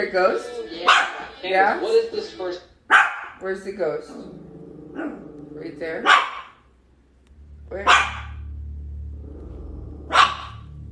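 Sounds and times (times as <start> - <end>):
speech: 0.0 - 6.4, 7.7 - 8.2
low steady hum: 0.0 - 10.9
dog barking: 0.9 - 1.2, 2.9 - 3.4, 6.0 - 6.7, 7.8 - 8.4, 10.1 - 10.8.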